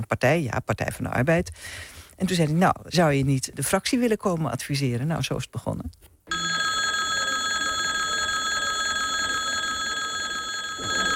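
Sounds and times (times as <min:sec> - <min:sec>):
speech: 0:00.0 - 0:06.1
electric bell ringing in a parliamentary chamber: 0:06.3 - 0:11.1.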